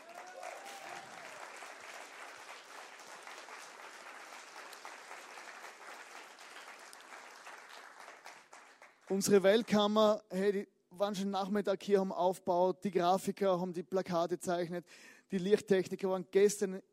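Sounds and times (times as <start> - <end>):
large crowd applauding for a band: 0.0 - 9.5
speech: 9.1 - 16.9.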